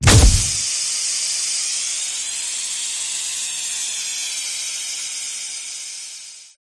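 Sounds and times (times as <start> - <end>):
explosion: 0.0 - 0.6.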